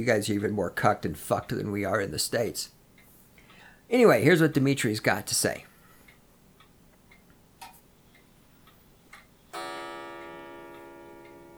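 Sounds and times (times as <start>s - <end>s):
speech: 0.0s - 2.8s, 3.9s - 5.7s
clock ticking: 5.3s - 11.5s
loud bright clock chime: 9.5s - 11.5s.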